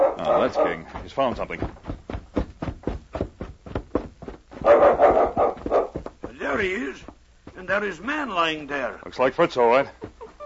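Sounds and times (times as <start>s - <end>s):
speech: 0.2s - 1.9s, 6.6s - 7.1s, 7.7s - 10.1s
small dog barking with sharp yaps: 4.6s - 6.0s.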